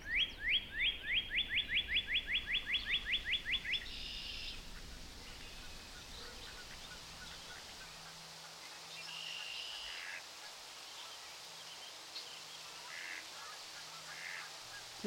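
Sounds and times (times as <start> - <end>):
steady outdoor hiss: 0.0 - 15.0
faint duck quacks by a river near a railway bridge: 6.0 - 11.2, 12.6 - 15.0.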